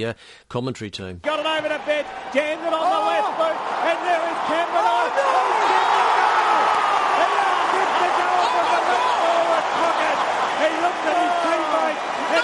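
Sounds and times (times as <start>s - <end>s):
speech: 0.0s - 6.3s, 10.6s - 12.4s
large football stadium crowd cheering and shouting: 1.2s - 12.4s.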